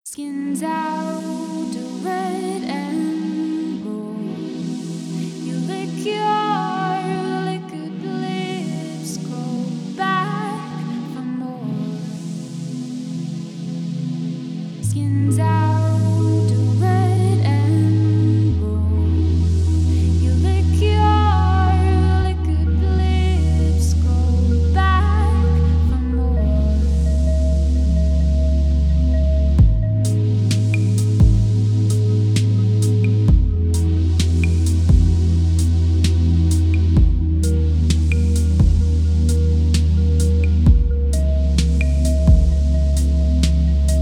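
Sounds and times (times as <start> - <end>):
chill vocals tuned to 432 Hz: 0.1 - 13.3, 14.8 - 43.9.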